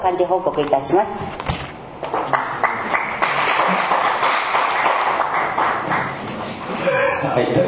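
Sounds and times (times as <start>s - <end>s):
speech: 0.0s - 1.4s, 6.8s - 7.6s
applause from many people at a club's regular meeting: 2.1s - 6.2s.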